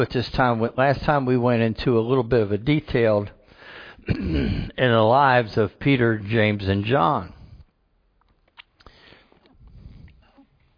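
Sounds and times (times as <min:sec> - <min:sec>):
speech: 0:00.0 - 0:03.4, 0:04.0 - 0:07.4
person coughing from a tickle in the throat: 0:04.0 - 0:04.8.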